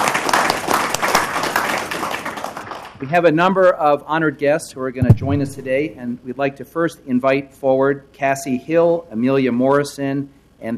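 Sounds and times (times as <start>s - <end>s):
audience applause for a high school team's national championship: 0.0s - 2.9s
speech: 3.0s - 10.7s.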